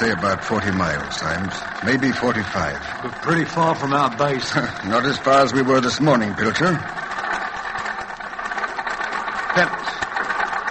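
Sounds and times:
speech: 0.0s - 7.0s, 9.6s - 9.8s
vehicle motor running rough with sand in its carburetor: 0.0s - 10.7s.

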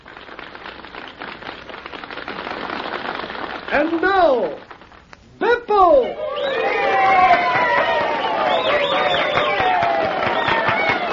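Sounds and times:
audience clapping: 0.0s - 5.2s, 6.8s - 11.1s
speech: 3.7s - 4.7s, 5.4s - 6.6s
large audience cheering and shouting: 5.7s - 11.1s.

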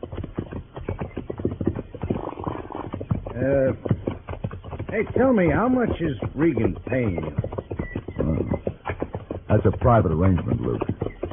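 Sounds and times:
horses' hooves clip-clopping in a walk with riders on horseback: 0.0s - 11.3s
speech: 4.9s - 7.5s, 9.5s - 10.9s.

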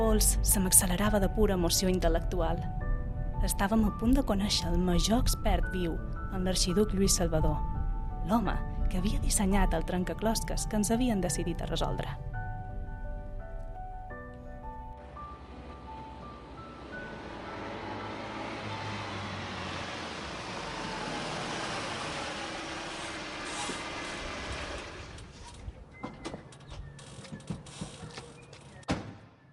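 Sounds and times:
speech: 0.1s - 2.8s, 3.4s - 12.3s
car driving on a road: 14.6s - 25.5s
car mechanical creaks and clunks as it stops: 22.5s - 29.2s.

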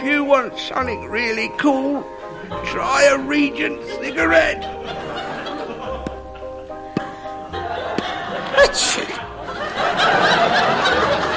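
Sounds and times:
speech: 0.0s - 5.0s, 8.6s - 9.2s
laughter: 4.2s - 11.3s
sneeze: 8.6s - 9.2s.

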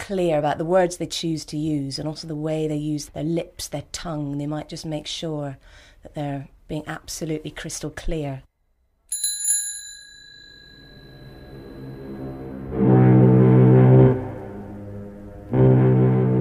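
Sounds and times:
speech: 0.1s - 8.5s
bicycle bell ding: 9.1s - 12.4s
deep droning blasts: 11.5s - 16.3s.

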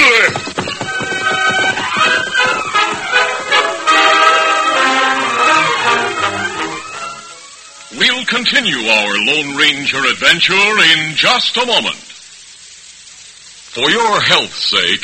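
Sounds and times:
horse galloping away: 0.0s - 6.3s
sweeping orchestral music: 0.3s - 8.0s
speech: 9.3s - 12.1s, 13.8s - 15.0s.

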